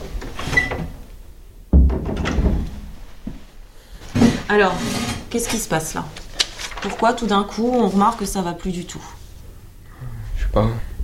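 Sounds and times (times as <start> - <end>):
door pushed shut with a solid thunk: 1.7 - 2.9
speech: 4.5 - 6.2, 6.8 - 9.2, 10.6 - 10.8
faint shuffling and handling noise: 5.4 - 9.4.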